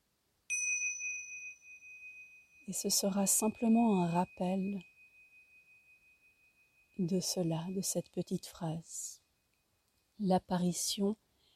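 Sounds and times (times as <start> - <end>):
small meditation bell ringing: 0.5 - 8.2
speech: 2.7 - 4.9, 7.0 - 9.1, 10.2 - 11.2.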